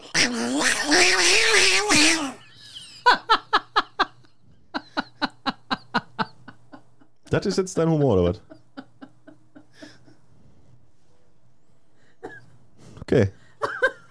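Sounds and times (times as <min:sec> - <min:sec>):
person imitating fighting cats with a wavering strained yowl: 0:00.0 - 0:02.4
laughter: 0:02.4 - 0:10.2
speech: 0:07.4 - 0:08.5, 0:13.2 - 0:13.4.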